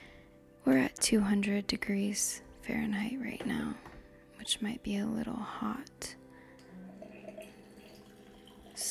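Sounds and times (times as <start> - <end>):
speech: 0.6 - 6.2
water pouring into a glass pitcher: 6.4 - 8.8.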